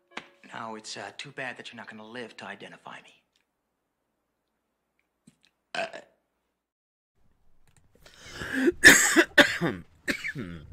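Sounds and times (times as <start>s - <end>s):
speech: 0.6s - 3.2s, 8.6s - 10.7s
person burping: 5.7s - 6.2s, 8.7s - 10.7s
person coughing: 8.5s - 10.7s.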